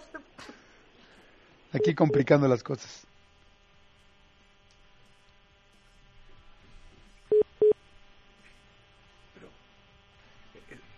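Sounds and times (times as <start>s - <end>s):
speech: 1.7s - 3.1s
telephone keypad tones as a number is dialed: 1.8s - 2.3s.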